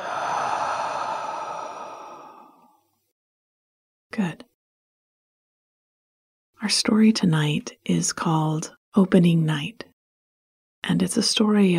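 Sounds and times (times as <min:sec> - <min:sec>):
deep breath in through the nose and long exhale through the mouth: 0:00.0 - 0:02.9
speech: 0:04.2 - 0:04.5, 0:06.6 - 0:09.9, 0:10.9 - 0:11.7.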